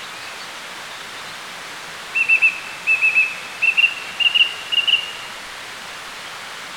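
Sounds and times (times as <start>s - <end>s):
Song Thrush whistled song: 2.2s - 5.2s.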